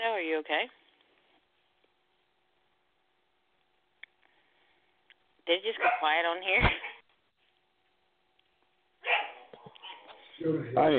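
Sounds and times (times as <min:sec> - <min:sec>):
speech: 0:00.4 - 0:00.8, 0:05.5 - 0:06.9, 0:10.4 - 0:10.9
dog barking: 0:05.8 - 0:06.2, 0:09.0 - 0:10.2
dogs yipping and whining: 0:09.0 - 0:10.3.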